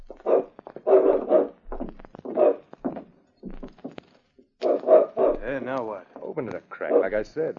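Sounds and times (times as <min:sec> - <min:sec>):
dog shut in a back room barking behind a door: 0:00.0 - 0:03.0, 0:04.6 - 0:05.7, 0:06.8 - 0:07.2
speech: 0:05.6 - 0:07.5.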